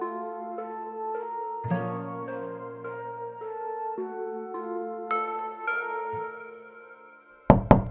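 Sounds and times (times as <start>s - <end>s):
sustained musical tones: 0.0s - 7.5s
loud sharp knocks on the front door of a home: 7.5s - 7.9s.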